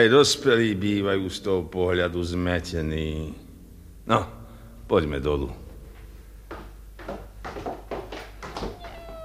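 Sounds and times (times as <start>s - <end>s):
speech: 0.0s - 3.4s, 4.1s - 5.6s
low steady hum: 0.0s - 9.2s
kittens meowing: 8.6s - 9.2s.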